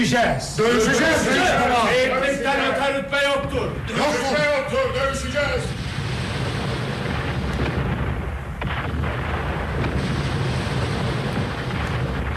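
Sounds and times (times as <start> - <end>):
speech: 0.0 - 5.8
cannons firing from a castle: 3.4 - 12.3.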